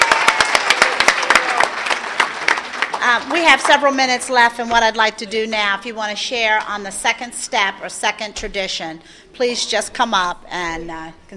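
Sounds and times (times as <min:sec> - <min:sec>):
small audience at a meeting applauding: 0:00.0 - 0:04.0
speech: 0:03.0 - 0:11.3.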